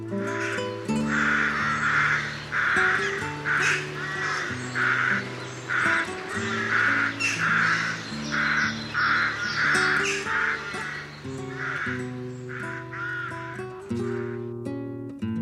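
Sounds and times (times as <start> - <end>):
rooks cawing in a chorus: 0.0 - 14.5.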